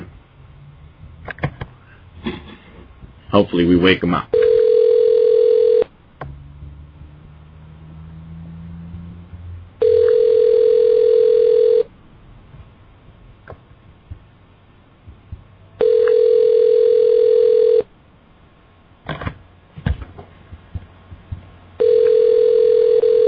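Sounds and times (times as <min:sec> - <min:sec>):
speech: 0:03.3 - 0:04.4
outgoing phone call ringback tone: 0:04.3 - 0:05.9, 0:09.8 - 0:11.9, 0:15.8 - 0:17.9, 0:21.8 - 0:23.2.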